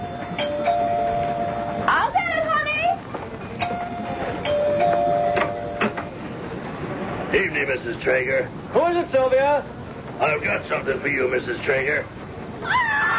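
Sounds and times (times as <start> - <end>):
doorbell chiming on a June night: 0.0 - 1.9, 3.6 - 5.9
faint hum: 0.0 - 13.1
speech: 7.6 - 12.9.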